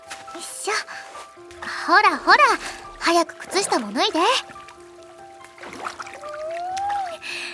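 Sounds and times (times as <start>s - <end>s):
feet dipping into a flowing river of cold water: 0.0s - 7.5s
speech: 0.4s - 4.6s
murmur of flowing river water: 0.8s - 7.5s.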